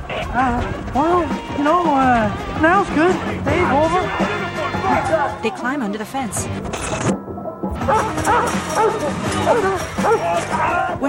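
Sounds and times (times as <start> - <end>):
speech: 0.2 - 7.2, 7.9 - 11.0
dog barking: 7.8 - 10.9.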